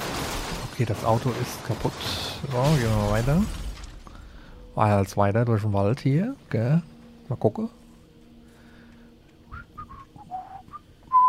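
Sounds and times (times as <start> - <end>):
speech: 0.8 - 3.6, 4.8 - 7.8
person whistling a tune while walking through a dark forest: 9.5 - 11.2.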